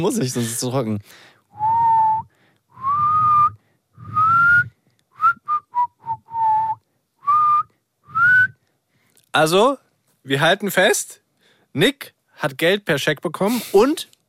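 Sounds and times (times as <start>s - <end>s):
speech: 0.0s - 1.7s, 9.4s - 14.1s
person whistling a melody with lips: 1.6s - 8.6s.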